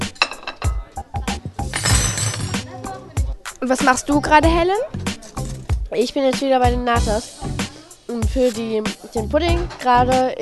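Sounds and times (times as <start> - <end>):
dishes and cutlery clinking as a table is set for a meal: 0.0 - 3.0
speech: 3.6 - 5.0, 5.9 - 7.4, 8.1 - 10.4.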